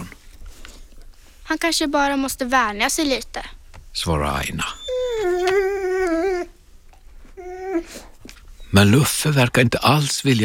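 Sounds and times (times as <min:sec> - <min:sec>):
speech: 0:01.5 - 0:05.6, 0:08.7 - 0:10.4
dog howling loudly: 0:04.7 - 0:06.6, 0:07.4 - 0:08.0.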